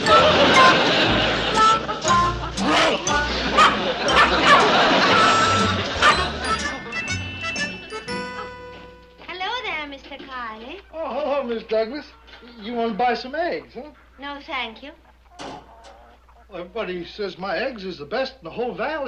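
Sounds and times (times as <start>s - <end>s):
laughter: 0.0s - 8.1s
voices murmuring: 0.0s - 8.7s, 10.0s - 18.1s
dog barking in short sharp bursts: 2.6s - 4.9s, 5.9s - 6.4s
speech: 13.1s - 19.0s.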